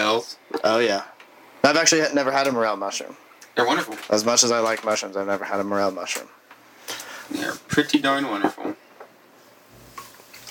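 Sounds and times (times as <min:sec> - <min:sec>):
speech: 0:00.2 - 0:08.7
beer pouring into glasses with splashing and fizzing: 0:09.8 - 0:10.4.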